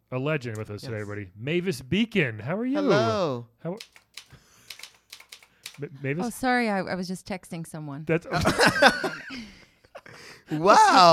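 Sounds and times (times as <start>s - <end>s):
speech: 0.1s - 4.3s, 5.8s - 9.6s, 10.2s - 11.1s
Brother typewriter keys clacking: 3.8s - 5.8s
laughter: 8.3s - 11.1s.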